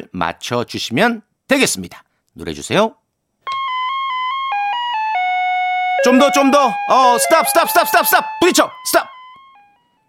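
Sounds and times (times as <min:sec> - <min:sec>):
speech: 0:00.2 - 0:03.0, 0:06.0 - 0:09.1
electronic chime melody of a vehicle reversing alert: 0:03.5 - 0:09.8.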